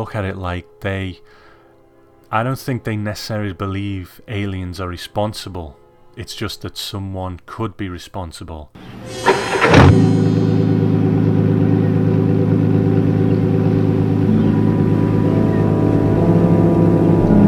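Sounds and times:
speech: 0:00.0 - 0:01.4, 0:02.3 - 0:10.2
car engine cranking and starting: 0:08.8 - 0:17.4.

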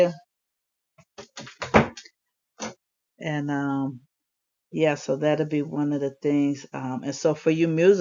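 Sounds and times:
speech: 0:00.0 - 0:00.2, 0:03.2 - 0:04.1, 0:04.7 - 0:07.9
door being pulled shut with a thud: 0:01.2 - 0:02.0.

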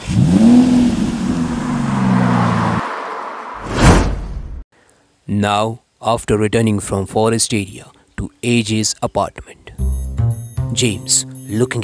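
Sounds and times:
car engine revving: 0:00.0 - 0:03.8
vehicle whooshing as it speeds off: 0:01.2 - 0:04.6
speech: 0:05.3 - 0:09.9, 0:10.7 - 0:11.8.

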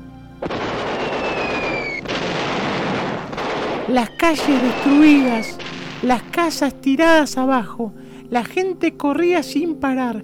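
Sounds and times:
machine gun fire: 0:00.4 - 0:06.7
bombs exploding in wartime Berlin: 0:00.4 - 0:07.3
high whistling tone gliding downward: 0:00.6 - 0:02.1, 0:03.9 - 0:05.6
speech: 0:03.9 - 0:10.2.

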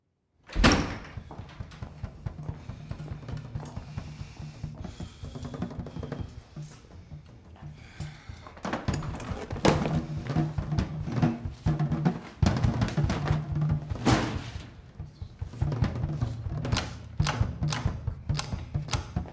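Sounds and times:
locked band room door yanked open: 0:00.4 - 0:01.8, 0:12.4 - 0:14.8
rhythmic drum thumping and clatter: 0:01.0 - 0:19.3.

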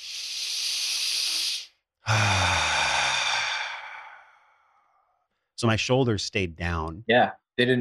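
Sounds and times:
rough exhale with a low throaty tone: 0:00.0 - 0:04.3
deep full circular belly breath inhale hiss: 0:00.0 - 0:04.8
speech: 0:05.6 - 0:07.8.

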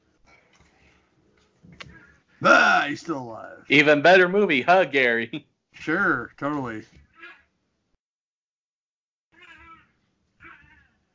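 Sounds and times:
speech: 0:02.4 - 0:07.0
cats yowling while fighting, one in heat: 0:09.4 - 0:11.1.

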